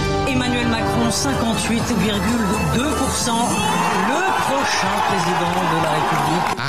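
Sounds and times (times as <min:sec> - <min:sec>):
speech: 0:00.4 - 0:06.6
large crowd of supporters cheering and roaring: 0:01.4 - 0:06.6.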